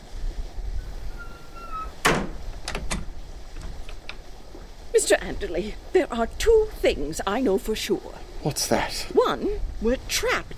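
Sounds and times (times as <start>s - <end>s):
low hum: 0.0s - 10.5s
balcony door swinging shut with a thud: 1.2s - 3.8s
door latch clicking and rattling: 1.6s - 4.2s
speech: 5.0s - 10.5s.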